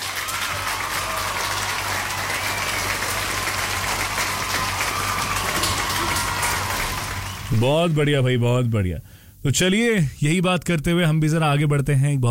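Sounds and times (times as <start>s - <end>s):
crowd applause: 0.0s - 8.4s
speech: 7.6s - 12.2s.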